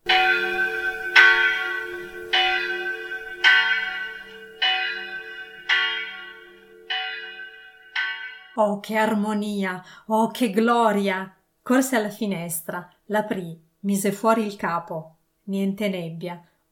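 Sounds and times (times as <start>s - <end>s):
church bell ringing: 0.0s - 8.6s
speech: 8.6s - 16.5s.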